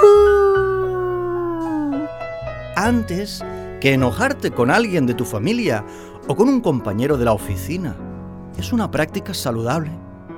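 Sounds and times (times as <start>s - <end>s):
wolf howling: 0.0s - 2.1s
speech: 2.8s - 8.0s, 8.6s - 10.0s.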